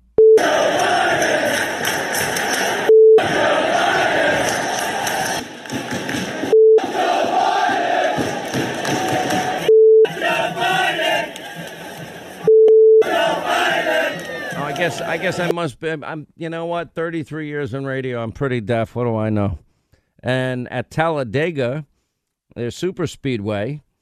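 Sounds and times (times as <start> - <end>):
huge stadium crowd chanting an obscene political slogan in unison: 0.4 - 15.5
short electronic censor bleeps: 2.9 - 3.2
speech: 15.2 - 21.9, 22.6 - 23.8.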